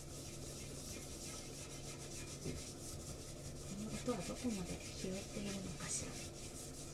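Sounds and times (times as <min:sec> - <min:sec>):
sponge scrubbing powder residue off a hard surface: 0:00.0 - 0:06.9
speech: 0:02.4 - 0:02.8, 0:04.0 - 0:06.4.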